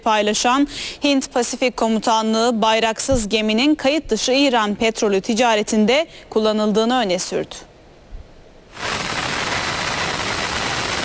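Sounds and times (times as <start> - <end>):
speech: 0.0 - 7.7
helicopter engine and rotor roar: 8.8 - 11.0.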